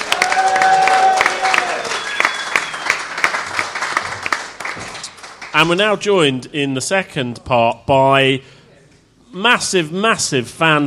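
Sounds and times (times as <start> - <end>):
crowd clapping: 0.0 - 5.7
high whistle or cheer: 0.1 - 3.0
speech: 5.6 - 8.6, 9.3 - 10.8.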